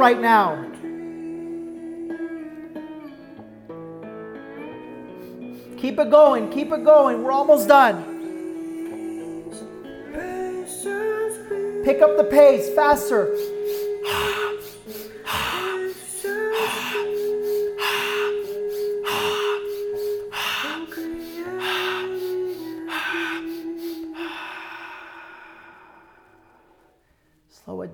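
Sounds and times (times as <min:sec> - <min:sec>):
speech: 0:00.0 - 0:00.7, 0:05.8 - 0:08.1, 0:11.9 - 0:14.2
rapid forceful breaths of a breathing exercise: 0:05.1 - 0:05.8, 0:13.0 - 0:27.0
sustained drone: 0:13.2 - 0:26.9.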